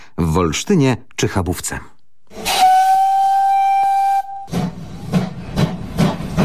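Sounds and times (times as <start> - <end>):
speech: 0.2 - 2.0
old railway steam locomotive whistle: 2.3 - 4.7.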